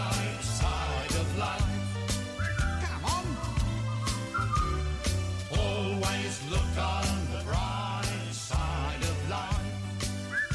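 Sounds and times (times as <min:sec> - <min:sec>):
steady drum beat: 0:00.0 - 0:10.2
bass: 0:00.0 - 0:10.5
full band backing music: 0:00.0 - 0:10.5
cheerful whistled melody: 0:02.2 - 0:05.3, 0:10.0 - 0:10.5.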